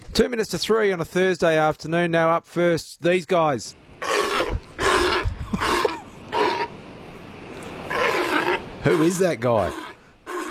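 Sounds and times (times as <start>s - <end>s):
speech: 0.2s - 4.2s, 8.8s - 9.8s
Australian sea lion calling with harsh honking barks: 4.0s - 6.8s, 7.8s - 10.4s.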